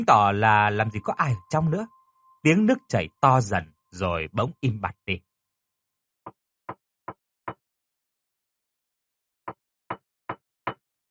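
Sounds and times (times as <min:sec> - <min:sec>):
speech: 0:00.0 - 0:05.3
sharp knocks on the shared wall between men's and women's toilets: 0:09.5 - 0:10.8.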